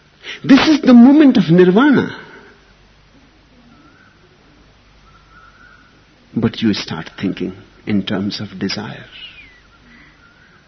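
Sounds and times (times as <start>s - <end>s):
steady hiss of outdoor noise: 0.0s - 10.6s
speech: 0.4s - 2.2s, 6.5s - 9.4s
cuckoo calling: 3.6s - 6.1s, 9.1s - 10.6s.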